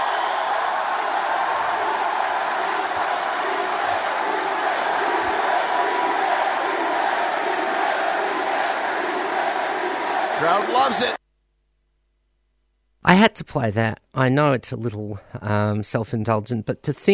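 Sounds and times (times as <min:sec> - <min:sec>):
excited shouts: 0:00.0 - 0:11.2
large arena crowd chanting in unison at wrestling: 0:00.0 - 0:11.2
speech: 0:10.4 - 0:11.2, 0:13.1 - 0:17.1.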